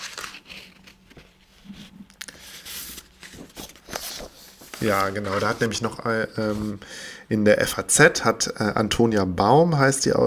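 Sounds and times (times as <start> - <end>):
paper documents rustling and crinkling as they are leafed through: 0.0 - 6.7
speech: 4.8 - 10.2.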